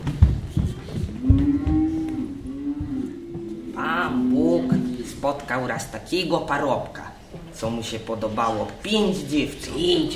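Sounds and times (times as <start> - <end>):
cows mooing: 1.2 - 5.1
speech: 5.3 - 10.1.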